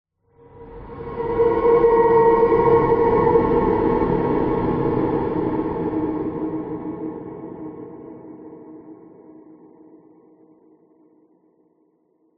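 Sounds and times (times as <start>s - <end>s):
horror ghostly drone: 0.3s - 10.8s
horror swell pass by: 0.4s - 9.2s.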